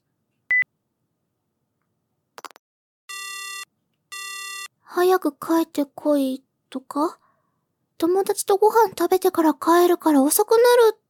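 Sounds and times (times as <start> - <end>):
telephone ringing with buzzy electronic bursts: 3.1 - 4.7
speech: 5.0 - 7.2, 8.0 - 11.0.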